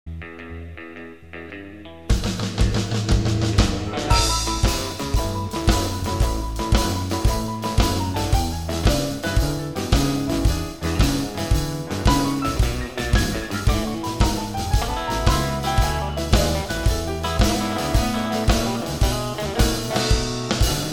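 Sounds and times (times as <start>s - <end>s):
medium Texas shuffle 12-bar guitar rhythm: 0.1s - 20.9s
piano rhythm: 2.9s - 20.9s.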